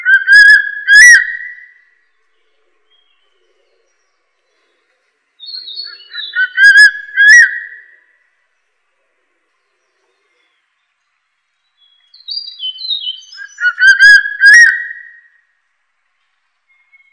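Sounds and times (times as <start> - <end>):
crested serpent eagle calling: 0.0 - 1.7, 5.5 - 7.9, 12.3 - 15.2.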